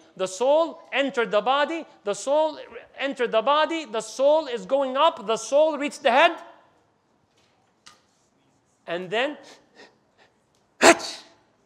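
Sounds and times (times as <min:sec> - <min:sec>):
speech: 0:00.2 - 0:06.5, 0:08.9 - 0:09.9
person imitating a sneeze: 0:10.8 - 0:11.4.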